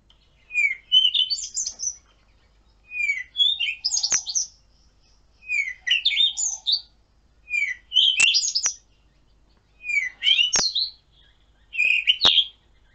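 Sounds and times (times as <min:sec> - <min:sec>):
Cape Robin-chat singing whistled and warbled phrases: 0:00.4 - 0:02.0, 0:02.9 - 0:04.6, 0:05.4 - 0:08.9, 0:09.7 - 0:12.9.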